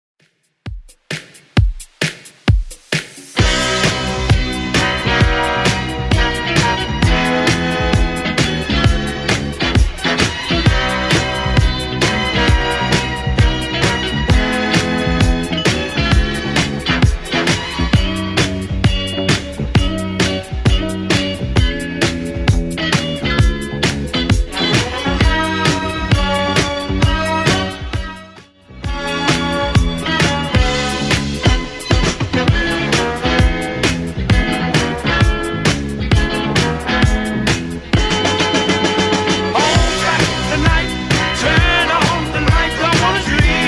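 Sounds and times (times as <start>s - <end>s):
1970s dance drum loop at 132 bpm: 0.2s - 28.2s, 28.8s - 43.6s.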